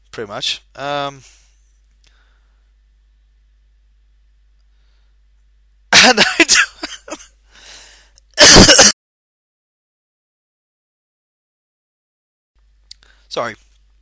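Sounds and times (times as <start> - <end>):
speech: 0.2 - 1.4, 6.1 - 6.7, 13.3 - 13.6
person coughing: 6.0 - 7.3, 8.4 - 9.0
breathy intake: 7.5 - 8.2.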